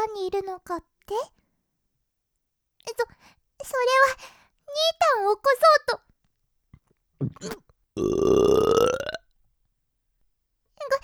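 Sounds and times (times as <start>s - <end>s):
speech: 0.1s - 1.4s, 2.8s - 6.1s, 7.2s - 8.9s
short voice: 7.2s - 7.6s
loud burp: 7.2s - 9.2s.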